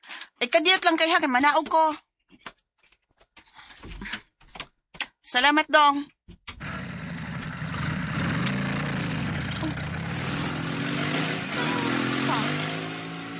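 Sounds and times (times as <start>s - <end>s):
speech: 0.4s - 2.0s, 5.3s - 6.2s
motorcycle engine idling: 6.6s - 13.3s.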